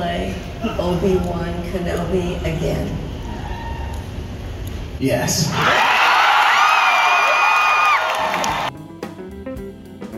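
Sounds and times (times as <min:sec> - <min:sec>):
speech: 0:00.7 - 0:03.1, 0:05.0 - 0:05.9
large crowd of fans cheering and whooping at a fan exhibition: 0:03.2 - 0:04.2, 0:05.5 - 0:08.7.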